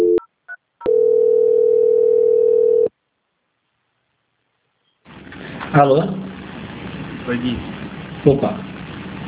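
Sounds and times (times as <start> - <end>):
telephone tones during a call transfer: 0.0 - 2.9
speech: 5.7 - 6.3, 7.3 - 8.7.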